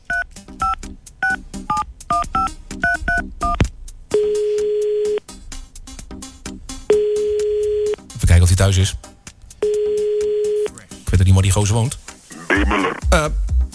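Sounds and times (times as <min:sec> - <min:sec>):
telephone keypad DTMF beeps dialing a number: 0:00.0 - 0:05.2, 0:06.9 - 0:08.0, 0:09.6 - 0:10.7
long steady telephone line tone: 0:04.2 - 0:05.2, 0:06.9 - 0:08.0, 0:09.6 - 0:10.7
speech: 0:08.6 - 0:09.1, 0:11.4 - 0:12.0, 0:12.6 - 0:13.4.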